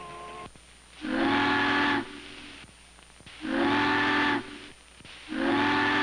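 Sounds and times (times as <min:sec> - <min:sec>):
ship's steam whistle blasts: 0:00.0 - 0:02.4, 0:03.4 - 0:04.7, 0:05.3 - 0:06.0
faint hiss: 0:00.0 - 0:06.0.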